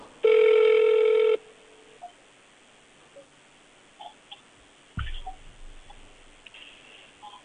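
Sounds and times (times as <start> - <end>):
telephone ringback tone: 0.2 - 1.4
rustling thump: 5.0 - 6.7.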